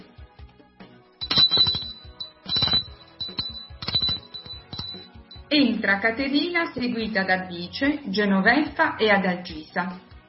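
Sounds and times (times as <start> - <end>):
doorbell ringing in short bright metallic bursts: 1.2 - 5.5
speech: 5.5 - 10.1.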